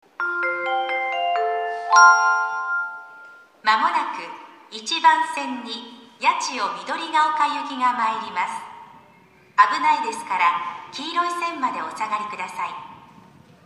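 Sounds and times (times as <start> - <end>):
train station announcement for platform 1 approaching train: 0.1 - 13.0
train approach melody at station: 0.2 - 3.6.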